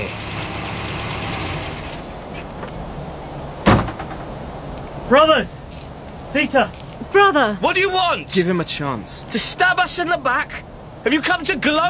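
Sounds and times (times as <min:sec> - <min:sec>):
truck engine rumbling as it pulls up and idles: 0:00.0 - 0:11.8
truck door clunk: 0:02.0 - 0:05.6
speech: 0:05.1 - 0:05.6, 0:06.3 - 0:11.8.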